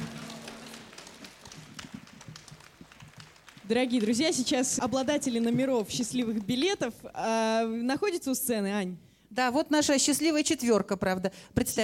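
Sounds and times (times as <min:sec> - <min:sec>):
audience clapping after a vocal ensemble performance: 0:00.0 - 0:06.7
speech: 0:03.7 - 0:11.8.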